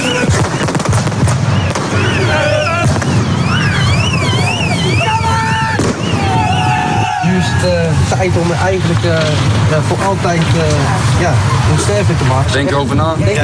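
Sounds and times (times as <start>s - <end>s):
shrill wavering whistle-like tones: 0.0s - 7.8s
crowd noise of football supporters at an evening gathering: 0.0s - 13.4s
fireworks and flares set off by football supporters: 0.0s - 13.4s
speech: 8.2s - 13.4s.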